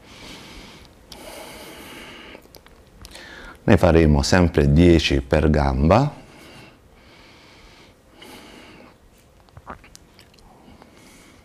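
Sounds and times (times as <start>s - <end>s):
exhales and inhales during a breathing exercise: 0.0s - 3.6s, 6.2s - 9.0s, 10.3s - 11.4s
speech: 3.7s - 6.2s.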